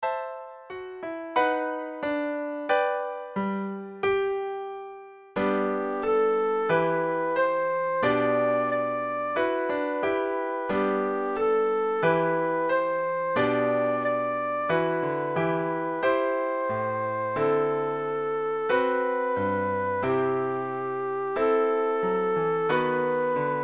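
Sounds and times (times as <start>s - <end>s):
piano: 0.0s - 23.6s
recorder: 5.4s - 23.6s.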